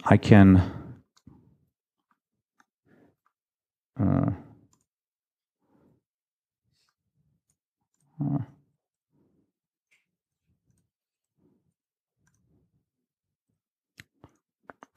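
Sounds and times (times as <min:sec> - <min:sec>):
speech: 0:00.0 - 0:00.8
computer mouse clicking: 0:14.0 - 0:14.9.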